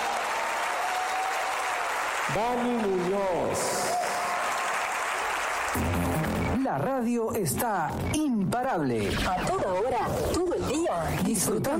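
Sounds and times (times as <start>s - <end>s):
loud dense crowd applause: 0.0s - 6.7s
speech: 2.3s - 3.9s, 6.6s - 11.7s.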